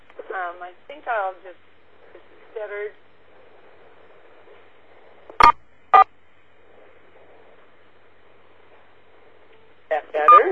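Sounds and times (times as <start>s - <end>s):
faint hum: 0.0s - 10.4s
speech: 0.4s - 3.0s, 9.9s - 10.4s
electronic phone keypad beeps from pressing star and 4: 10.3s - 10.4s.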